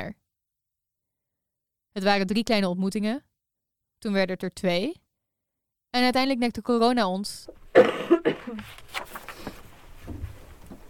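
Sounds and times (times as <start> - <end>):
speech: 0.0 - 0.2, 2.0 - 3.3, 4.0 - 5.0, 5.9 - 9.2
person coughing: 7.7 - 8.7.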